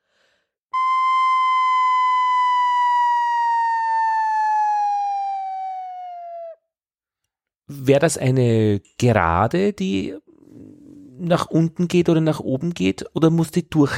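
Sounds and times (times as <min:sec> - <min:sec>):
flute head joint playing a breathy descending glissando: 0:00.8 - 0:06.6
speech: 0:07.8 - 0:10.2, 0:11.2 - 0:13.9.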